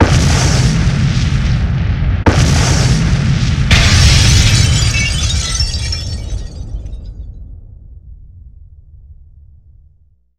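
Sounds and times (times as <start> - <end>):
heavy explosions: 0.0 - 9.7
glass shattering: 3.7 - 7.1.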